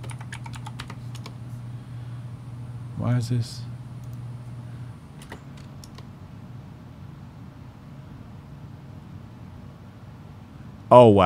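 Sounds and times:
typing on a computer keyboard: 0:00.0 - 0:01.4, 0:05.2 - 0:06.1
low hum: 0:00.9 - 0:06.6
speech: 0:03.0 - 0:03.7, 0:10.9 - 0:11.2.

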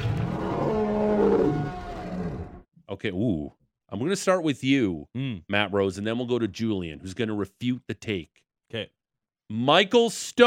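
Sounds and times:
deep growling creature roar: 0:00.0 - 0:02.6
speech: 0:03.0 - 0:10.4.

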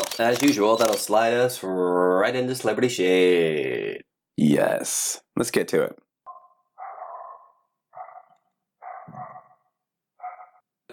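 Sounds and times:
speech: 0:00.2 - 0:06.0
dogs barking outside: 0:06.3 - 0:10.6.

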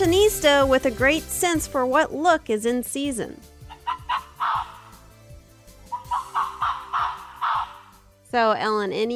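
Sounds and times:
speech: 0:00.3 - 0:03.5, 0:08.3 - 0:09.1
Arctic fox yelping barks: 0:03.7 - 0:05.1, 0:05.8 - 0:08.0.

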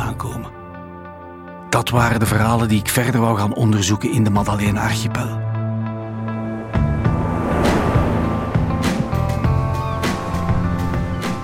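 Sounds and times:
speech: 0:01.7 - 0:05.5
zodiac outboard engine droning on the Mediterranean Sea: 0:05.6 - 0:11.4
sea water rushing past a zodiac: 0:06.0 - 0:11.1.

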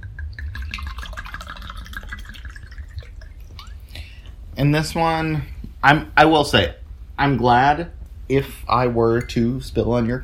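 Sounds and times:
wine pouring into a glass: 0:00.0 - 0:04.4
speech: 0:04.6 - 0:10.2.

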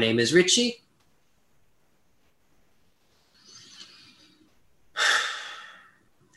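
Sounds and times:
speech: 0:00.0 - 0:00.8
louder relaxed exhale through the mouth: 0:03.3 - 0:06.0
slow soft inhale through the nose: 0:03.4 - 0:06.0.

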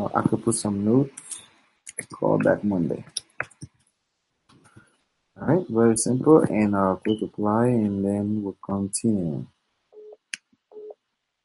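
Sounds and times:
speech: 0:00.1 - 0:03.2, 0:05.4 - 0:09.6
incoming phone call alert beeps: 0:07.0 - 0:07.3, 0:10.0 - 0:11.0.

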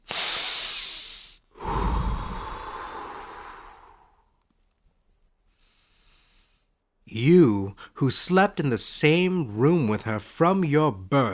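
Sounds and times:
man breathing in loud exaggerated breaths: 0:00.0 - 0:04.2
speech: 0:07.1 - 0:11.3.

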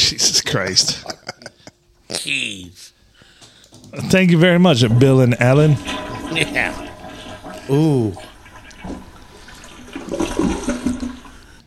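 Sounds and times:
speech: 0:00.1 - 0:01.2, 0:02.3 - 0:02.8, 0:03.9 - 0:06.8, 0:07.7 - 0:09.0
toilet flushing without clearing: 0:04.0 - 0:11.6.

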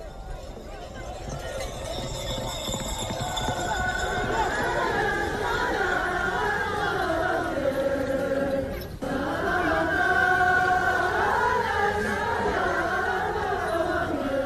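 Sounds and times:
horses galloping past: 0:00.0 - 0:09.0
murmur of voices and crowd noise: 0:00.0 - 0:14.4.

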